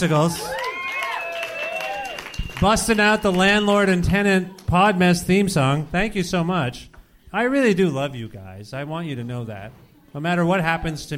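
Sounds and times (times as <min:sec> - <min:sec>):
speech: 0:00.0 - 0:00.6, 0:02.6 - 0:11.1
crowd cheering for a band with whoops and shouts: 0:00.0 - 0:04.7
audience clapping: 0:00.5 - 0:03.5.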